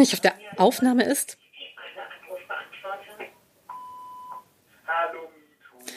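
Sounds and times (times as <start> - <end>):
speech: 0.0 - 1.4
telephone ringing with a steady electronic tone: 3.7 - 4.4.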